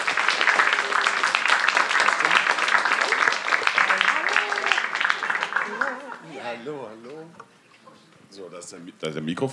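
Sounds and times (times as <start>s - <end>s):
audience applause: 0.0s - 6.4s
speech: 8.6s - 9.5s.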